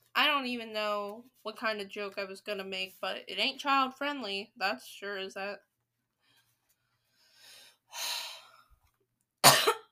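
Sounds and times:
speech: 0.4 - 5.7, 7.9 - 8.2
breathy inhales: 6.3 - 8.7
person coughing: 9.4 - 9.8.

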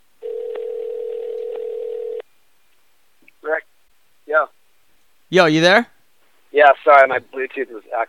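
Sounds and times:
electronic phone dialing tone placing a call: 0.2 - 2.2
speech: 5.3 - 5.9, 6.6 - 8.0.

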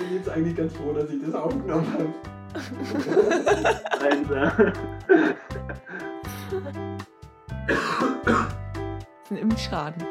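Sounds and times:
speech: 0.2 - 6.9, 9.3 - 10.1
laughter: 1.7 - 6.7
person coughing: 4.0 - 5.5, 7.7 - 8.6
person clearing throat: 7.7 - 8.6.

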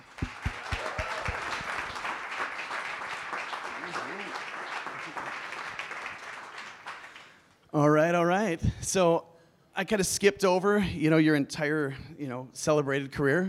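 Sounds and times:
people cheering: 0.0 - 7.1
audience applauding to welcome a speaker at a morning event: 0.0 - 7.4
speech: 7.8 - 13.4.

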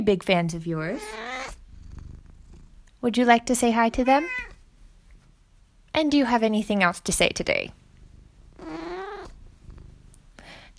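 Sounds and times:
speech: 0.0 - 1.6, 3.0 - 4.5, 6.0 - 7.8
cat meowing: 1.0 - 1.6, 4.0 - 4.6, 8.6 - 9.4
soft low rumble: 1.5 - 10.4.

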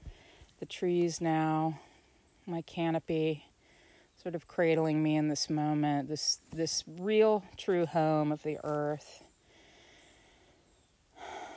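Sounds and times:
speech: 0.6 - 1.9, 2.5 - 3.5, 4.2 - 9.2
person breathing in outdoors beneath trees: 9.4 - 10.6, 11.2 - 11.5.

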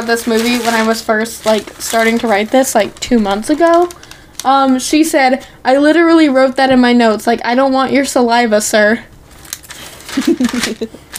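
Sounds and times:
papers rustling: 0.0 - 4.8, 9.3 - 11.1
speech: 0.0 - 9.1, 10.1 - 11.1.

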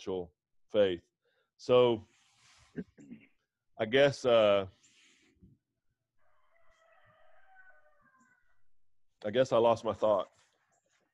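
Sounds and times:
speech: 0.0 - 2.2, 2.8 - 3.2, 3.8 - 4.8, 9.2 - 10.4
rooster crowing: 6.2 - 8.7.

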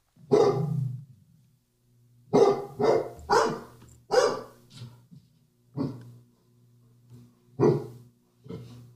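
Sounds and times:
dogs of different breeds barking: 0.3 - 0.8, 2.3 - 4.6, 5.8 - 6.1, 7.6 - 8.6.

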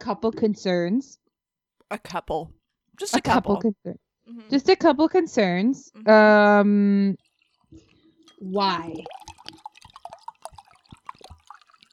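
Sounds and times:
speech: 0.0 - 1.2, 1.9 - 9.2
small drips of wine: 6.1 - 11.9
wine pouring into a glass: 7.1 - 11.9.

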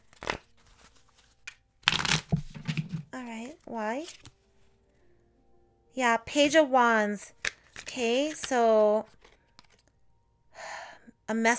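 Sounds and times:
deck of tarot cards being shuffled: 0.0 - 4.4, 7.3 - 9.9
speech: 3.2 - 4.3, 6.0 - 9.2, 11.3 - 11.5.

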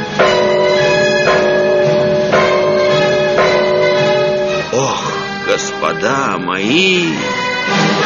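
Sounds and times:
town alarm bell clanging, rung by a guard at night to warn of rats: 0.0 - 6.0
speech: 6.6 - 7.9.

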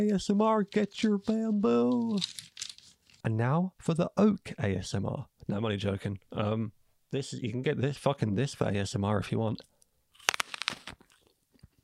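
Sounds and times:
speech: 0.0 - 2.5, 3.2 - 9.7
teeth biting into an apple: 10.2 - 11.3.

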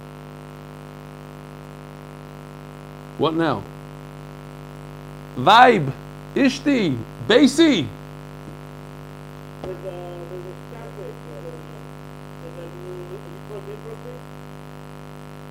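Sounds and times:
faint static hiss on a phone line: 0.0 - 15.4
steady low electrical hum: 0.0 - 15.4
speech: 3.2 - 3.8, 5.4 - 8.0, 9.7 - 11.2
warbling voice-like tones: 9.6 - 14.3.

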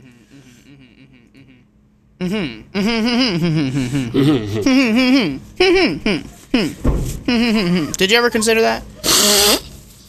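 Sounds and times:
quiet room noise: 0.0 - 10.0
speech: 2.2 - 9.6
laughter: 3.2 - 5.3
person blowing nose: 9.0 - 9.9.

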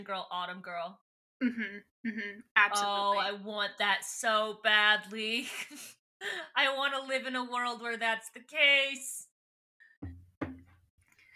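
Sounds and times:
speech: 0.0 - 9.3
drinking glass bumping and wobbling on a tabletop: 10.0 - 10.8.

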